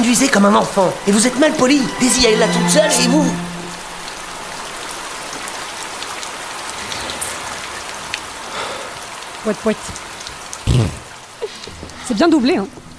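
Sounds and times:
steady rain patter of drops hitting a surface: 0:00.0 - 0:12.9
speech: 0:00.1 - 0:03.5, 0:09.4 - 0:10.0, 0:10.8 - 0:11.0, 0:12.1 - 0:12.8
sharp water drips: 0:03.6 - 0:12.9.

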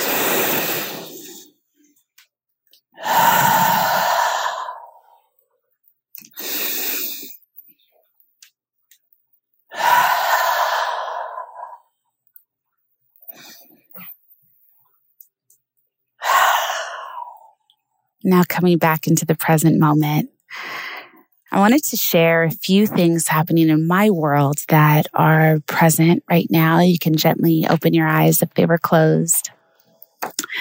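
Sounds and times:
full deep breaths in and out during a guided relaxation exercise: 0:00.0 - 0:01.9, 0:03.0 - 0:05.4, 0:06.3 - 0:07.5, 0:09.7 - 0:12.0, 0:13.2 - 0:14.1, 0:16.2 - 0:17.8, 0:20.5 - 0:21.4
speech: 0:18.3 - 0:20.7, 0:21.5 - 0:29.6.

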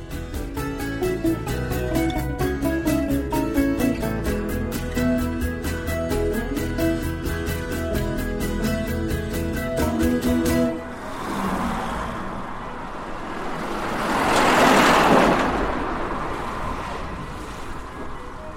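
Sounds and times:
rhythmic music: 0:00.0 - 0:10.9
rushing rumble of street traffic outside a window: 0:00.0 - 0:18.5
vehicle passing: 0:10.6 - 0:18.5.

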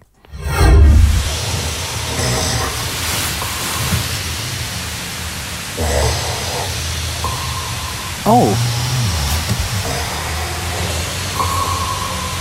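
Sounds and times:
constant hiss: 0:00.0 - 0:12.3
snoring that sounds like submarine sonar: 0:02.0 - 0:04.0, 0:05.8 - 0:07.4, 0:08.3 - 0:12.3
speech: 0:08.3 - 0:08.7.

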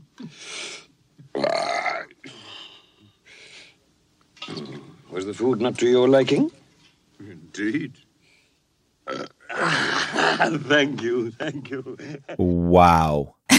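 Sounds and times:
speech: 0:00.2 - 0:00.6, 0:05.2 - 0:06.6, 0:07.6 - 0:08.0, 0:10.3 - 0:13.4
loud drawn-out belches in a film scene: 0:01.3 - 0:02.1, 0:04.4 - 0:05.0, 0:09.0 - 0:10.5.

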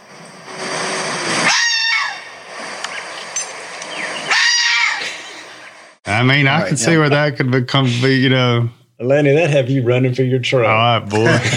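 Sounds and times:
red fox giving harsh hoarse screaming calls: 0:01.4 - 0:02.4, 0:04.2 - 0:05.2
speech: 0:06.2 - 0:11.5
laughter: 0:11.0 - 0:11.5.

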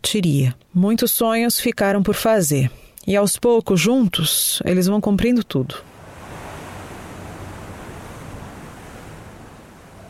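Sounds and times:
speech: 0:00.1 - 0:05.9
ocean surf roaring: 0:05.8 - 0:10.0.

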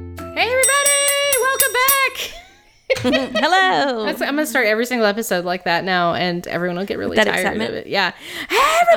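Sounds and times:
bell ringing: 0:00.6 - 0:03.2
laughter: 0:02.9 - 0:04.4
speech: 0:03.0 - 0:08.9.

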